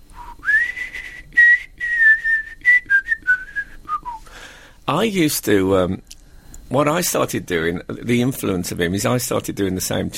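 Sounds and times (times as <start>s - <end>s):
man whistling a slow wistful melody: 0.1s - 4.4s
speech: 4.9s - 6.1s, 6.7s - 10.1s.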